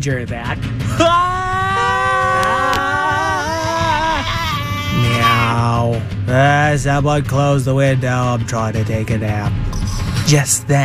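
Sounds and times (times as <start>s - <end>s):
speech: 0.0s - 1.6s, 5.0s - 10.8s
several voices screaming together in a sustained chorus: 0.9s - 5.7s.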